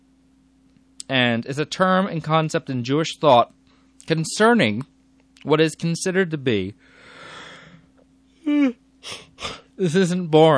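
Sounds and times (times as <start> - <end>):
speech: 1.1 - 7.0, 9.8 - 10.5
person yawning: 8.5 - 9.7.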